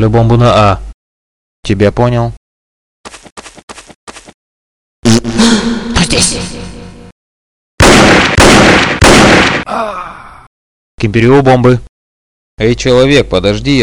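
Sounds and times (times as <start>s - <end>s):
speech: 0.0s - 0.8s, 1.6s - 2.4s, 6.0s - 6.7s, 11.0s - 11.9s, 12.6s - 13.8s
gunfire in a first-person shooter video game: 7.8s - 9.7s.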